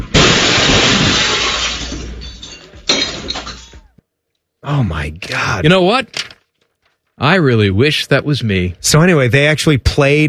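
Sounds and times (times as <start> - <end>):
car smashing through a glass radio studio window in downtown Charlotte: 0.0 - 3.7
shattering window glass: 0.0 - 4.0
breaking glass and tinkling shards: 1.4 - 3.8
speech: 4.7 - 6.2, 7.2 - 10.2.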